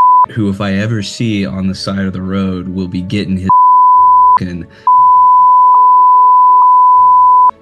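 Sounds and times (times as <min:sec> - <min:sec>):
long steady beep: 0:00.0 - 0:00.3, 0:03.5 - 0:07.5
speech: 0:00.3 - 0:03.5, 0:04.4 - 0:05.0.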